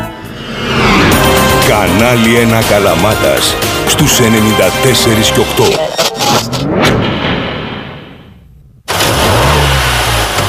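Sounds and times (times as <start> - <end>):
car engine revving and accelerating: 0.0 - 3.3, 8.9 - 10.4
speech: 1.8 - 7.0.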